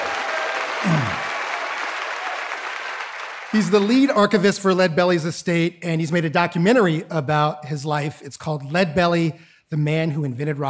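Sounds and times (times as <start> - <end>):
audience applause welcoming a guest: 0.0 - 4.2
speech: 3.6 - 10.6.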